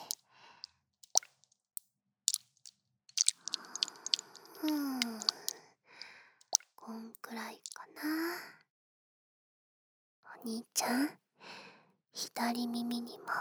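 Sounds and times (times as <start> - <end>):
water putty squeezed and kneaded in the palm: 0.0 - 0.2, 1.0 - 1.6, 2.3 - 6.6, 7.6 - 7.8
speech: 10.4 - 11.2, 12.2 - 13.3.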